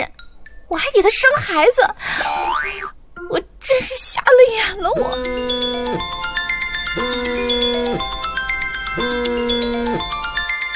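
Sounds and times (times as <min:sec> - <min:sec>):
speech: 0:00.7 - 0:06.1
phone ringing with a melodic electronic ringtone for an incoming call: 0:05.0 - 0:10.7.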